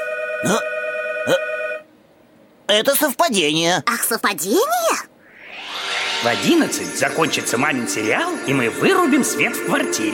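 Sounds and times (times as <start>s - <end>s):
telephone ringing in an apartment: 0.0s - 1.8s
speech: 0.4s - 1.6s, 2.7s - 5.1s, 6.2s - 10.1s.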